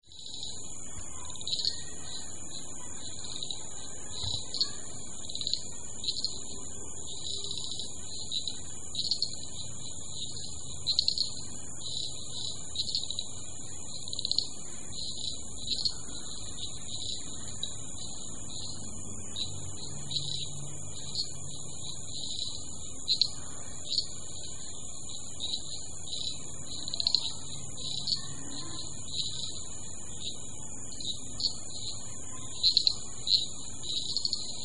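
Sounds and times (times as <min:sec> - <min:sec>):
common shrub frogs calling: 0:00.0 - 0:34.6.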